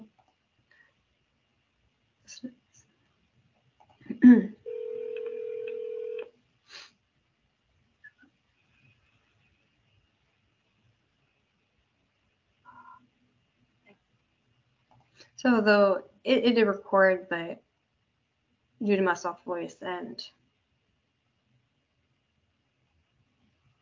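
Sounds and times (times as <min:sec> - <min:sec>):
speech: 0:02.4 - 0:02.6, 0:15.4 - 0:17.6, 0:18.8 - 0:20.4
steady electronic phone tone: 0:04.6 - 0:06.3.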